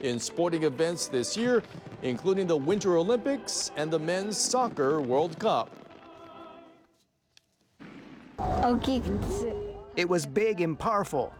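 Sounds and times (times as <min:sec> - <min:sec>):
speech: 0:00.0 - 0:05.8, 0:08.6 - 0:11.3
fireworks exploding with booms and crackles: 0:01.0 - 0:06.9, 0:07.8 - 0:09.8.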